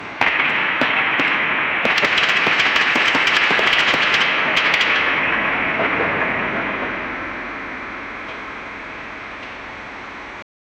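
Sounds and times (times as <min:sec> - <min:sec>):
massive explosion: 0:00.2 - 0:08.1
building collapsing chaotically: 0:00.5 - 0:07.8.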